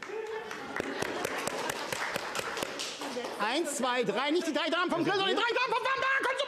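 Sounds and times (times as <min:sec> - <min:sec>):
laughter: 0:00.0 - 0:02.2, 0:03.7 - 0:06.3
small group clapping: 0:00.0 - 0:03.7
speech: 0:03.5 - 0:06.0.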